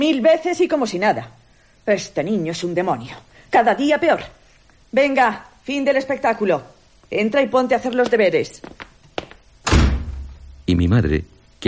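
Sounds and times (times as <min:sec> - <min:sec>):
speech: 0:00.0 - 0:08.8, 0:10.7 - 0:11.6
door slamming shut with a heavy booming thud: 0:09.6 - 0:10.4.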